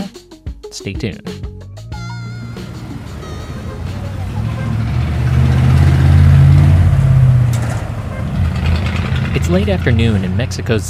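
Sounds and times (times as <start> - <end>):
speech: 0.7 - 1.5, 9.3 - 10.8
rush hour street traffic of car and truck engines: 1.8 - 10.8
vehicle passing: 2.3 - 10.8.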